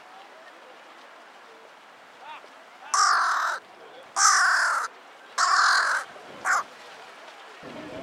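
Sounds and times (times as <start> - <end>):
Carrion Crow giving hoarse caws, Corvus corone: 2.9 - 3.6, 4.2 - 6.7.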